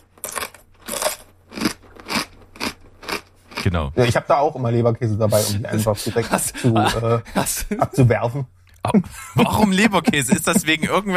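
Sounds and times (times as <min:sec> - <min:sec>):
loud crunching of snacks: 0:00.0 - 0:03.7
speech: 0:03.6 - 0:11.1
laughter: 0:05.4 - 0:08.3, 0:08.9 - 0:11.1.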